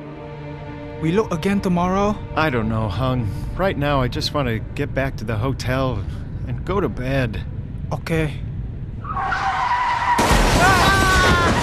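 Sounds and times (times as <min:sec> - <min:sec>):
speech: 0:01.0 - 0:08.5
rumbling: 0:03.5 - 0:11.6
motorcycle tires screeching in a rising skid: 0:09.0 - 0:11.6
motorcycle crashing into a car: 0:10.1 - 0:11.6.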